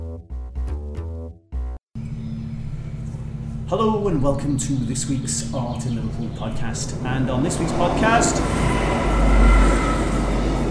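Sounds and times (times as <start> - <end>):
trains rolling past a doorway: 2.6 - 10.7
speech: 3.7 - 9.6.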